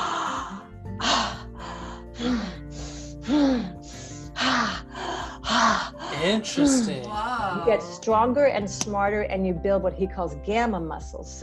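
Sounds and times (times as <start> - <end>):
forceful breaths from a breathing technique during a workout: 0.0 - 6.4
speech: 6.2 - 11.4.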